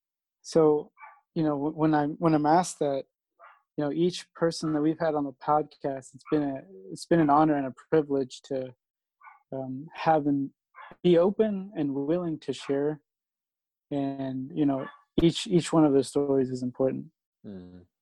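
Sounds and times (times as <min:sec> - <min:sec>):
speech: 0:00.5 - 0:03.1, 0:03.8 - 0:08.8, 0:09.5 - 0:13.1, 0:13.9 - 0:17.9
dog barking: 0:01.0 - 0:01.2, 0:04.6 - 0:04.9, 0:06.2 - 0:06.5, 0:09.2 - 0:09.4, 0:10.8 - 0:11.0, 0:14.8 - 0:15.1.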